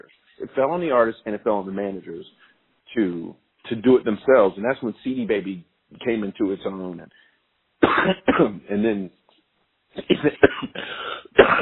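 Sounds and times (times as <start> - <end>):
speech: 0.1 - 9.2, 10.0 - 11.5
person coughing with a frog in the throat: 7.8 - 8.6, 10.0 - 11.5
rasping throat clearing: 10.0 - 11.5.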